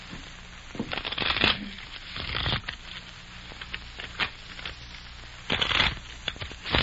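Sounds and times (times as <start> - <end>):
deck of playing cards being shuffled: 0.8 - 4.8, 5.5 - 6.8.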